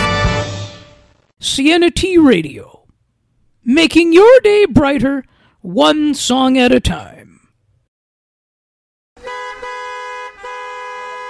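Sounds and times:
speech: 1.4 - 2.8, 3.6 - 7.3
car horns honking in busy traffic: 9.2 - 11.2.

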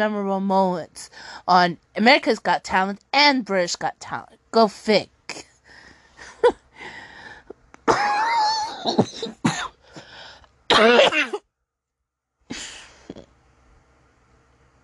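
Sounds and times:
speech: 0.0 - 5.5, 8.8 - 9.4, 10.8 - 11.4
person clearing throat: 7.8 - 9.8, 10.7 - 11.4
person coughing: 7.8 - 10.1, 10.7 - 11.4.

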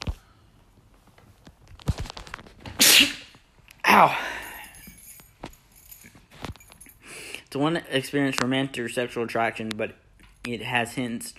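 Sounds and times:
person sneezing loudly: 2.8 - 4.7
speech: 4.0 - 4.3, 7.5 - 11.3.

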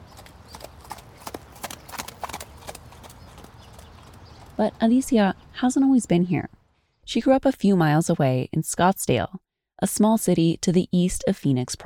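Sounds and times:
horse hooves trotting on a sidewalk: 0.0 - 5.0
speech: 4.6 - 11.8.

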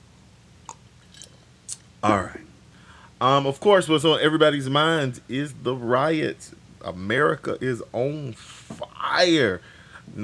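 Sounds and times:
quiet low hum: 0.0 - 10.2
soft wet mouth clicks and gulps: 0.6 - 1.9
person sipping bottled water: 0.7 - 1.8
speech: 2.0 - 2.5, 3.2 - 10.2.

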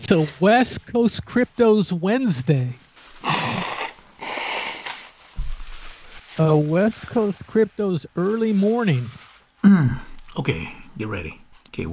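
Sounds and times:
speech: 0.1 - 2.8, 6.4 - 11.9
nose blowing: 3.2 - 5.4
low thump: 5.4 - 5.8.

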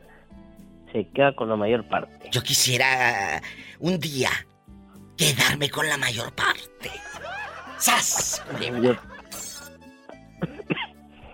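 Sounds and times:
speech: 0.9 - 4.5, 5.2 - 7.1, 7.8 - 9.4
laughter: 6.8 - 10.9
man coughing: 8.4 - 11.0.

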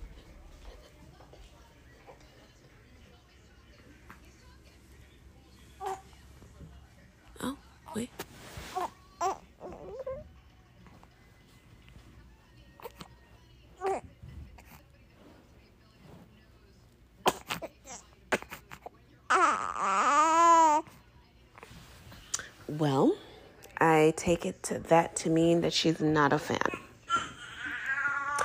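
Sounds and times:
baby fussing with soft babbling: 5.8 - 6.1, 8.6 - 10.3, 17.2 - 20.9, 27.1 - 28.4
baby wailing loudly: 19.3 - 20.8, 27.1 - 28.4
speech: 22.8 - 23.2, 24.0 - 26.7.

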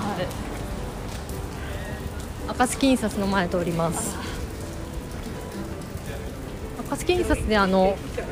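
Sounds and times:
steady rain falling outdoors: 0.0 - 8.3
speech: 2.5 - 4.3, 7.0 - 8.3.

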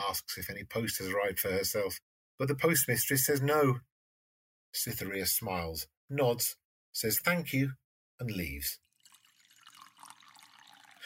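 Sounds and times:
speech: 0.1 - 3.9, 4.7 - 8.8
tea pouring into a cup at a table: 8.8 - 11.0.

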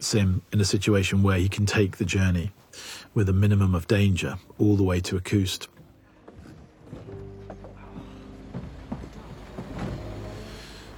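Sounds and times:
speech: 0.0 - 5.7
irregular clanks and knocks of a military truck: 6.2 - 10.3
heavy military truck carrying soldiers running: 7.5 - 10.9.

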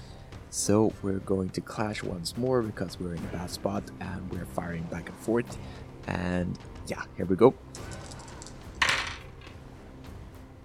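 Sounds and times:
speech: 0.5 - 8.0
action die and challenge dice tumbling across a hard tabletop: 7.8 - 9.6.

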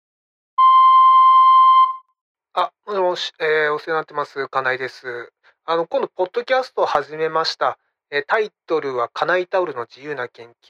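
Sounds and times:
answering machine electronic beep tone: 0.6 - 2.1
speech: 2.6 - 10.6.

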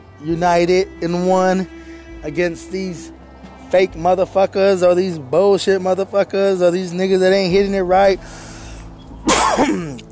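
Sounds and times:
speech: 0.2 - 8.5
person coughing sharply: 9.3 - 10.0.

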